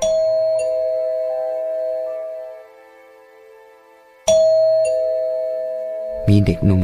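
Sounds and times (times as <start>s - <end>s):
doorbell two-tone ding-dong chime: 0.0s - 2.1s, 4.3s - 6.2s
speech: 6.3s - 6.8s.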